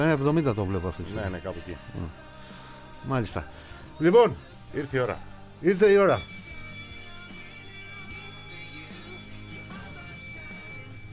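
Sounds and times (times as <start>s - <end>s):
speech: 0.0s - 2.3s, 3.0s - 6.4s
bright electronic bell tone: 6.1s - 11.1s.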